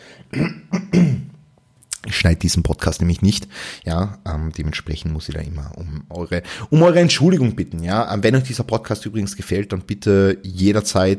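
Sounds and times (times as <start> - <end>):
person clearing throat: 0.3 - 1.4
speech: 2.2 - 11.1.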